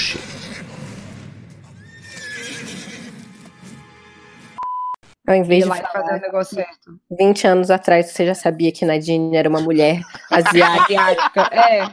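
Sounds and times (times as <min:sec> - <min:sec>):
horse whinnying: 0:00.0 - 0:03.2
speech: 0:05.3 - 0:11.9
laughter: 0:09.5 - 0:11.9.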